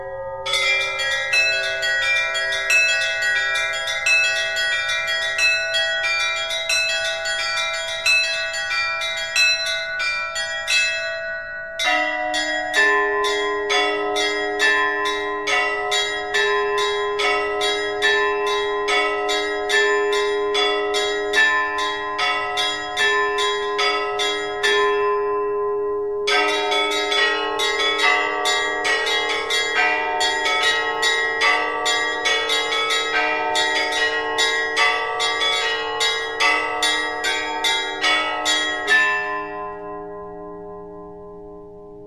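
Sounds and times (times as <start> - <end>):
monastery church bells ringing: 0.0 - 42.0.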